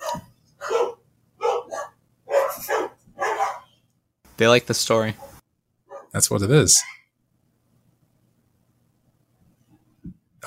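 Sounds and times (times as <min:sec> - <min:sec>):
dogs barking: 0:00.0 - 0:03.8, 0:05.2 - 0:06.2
speech: 0:04.4 - 0:05.3, 0:06.2 - 0:06.9.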